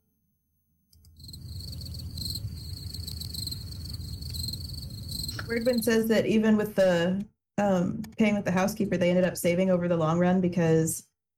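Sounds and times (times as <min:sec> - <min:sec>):
crickets chirping: 0:01.2 - 0:05.8
speech: 0:05.5 - 0:11.1.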